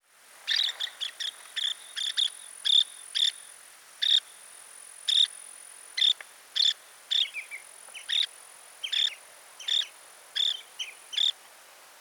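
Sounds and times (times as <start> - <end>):
Baird's sandpiper call: 0.4 - 11.4.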